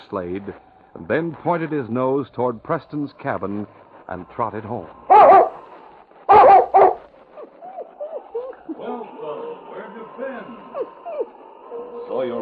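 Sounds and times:
speech: 0.1 - 5.5
dog giving high plaintive whimpers and whines: 5.1 - 5.6, 6.3 - 9.5, 10.6 - 12.2
dog giving sharp loud barks: 5.1 - 5.6, 6.3 - 8.3.

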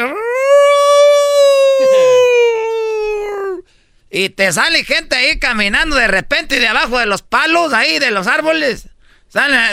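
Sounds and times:
person imitating a ghostly howl: 0.0 - 3.6
speech: 4.2 - 9.7.

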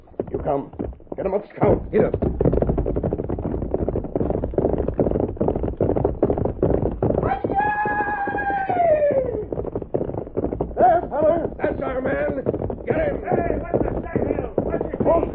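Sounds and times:
horse hooves galloping: 0.0 - 15.3
speech: 0.4 - 2.9
horse whinnying: 7.2 - 11.6.

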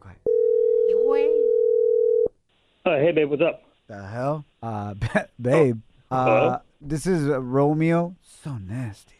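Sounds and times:
telephone ringback tone: 0.3 - 2.3
speech: 2.8 - 9.1
voice murmuring: 5.5 - 6.6.

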